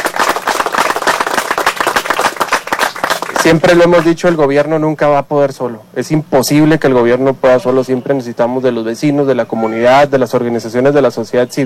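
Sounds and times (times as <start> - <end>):
crowd applauding local residents: 0.0 - 4.4
speech: 3.4 - 11.6.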